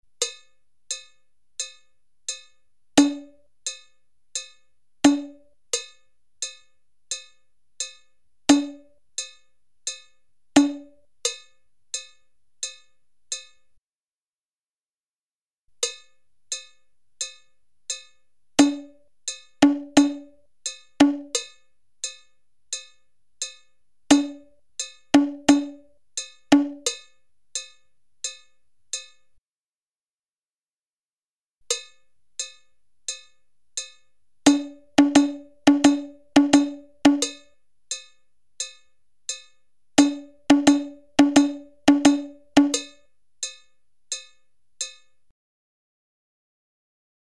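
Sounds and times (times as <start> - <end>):
bongos playing dotted notes: 3.0 - 3.8, 5.1 - 7.2, 8.5 - 9.3, 10.6 - 11.4, 18.6 - 22.2, 22.8 - 28.4, 34.5 - 45.1.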